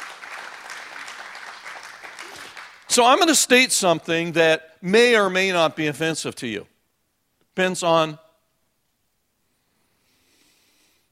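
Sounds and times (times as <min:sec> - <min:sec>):
church congregation applauding during a worship service: 0:00.0 - 0:03.4
speech: 0:02.9 - 0:06.7, 0:07.6 - 0:08.2.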